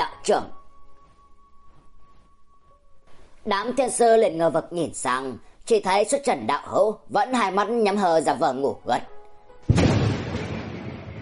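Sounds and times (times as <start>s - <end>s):
speech: 0.0s - 0.6s, 3.4s - 9.9s
city-shaking explosion blast: 9.7s - 11.2s.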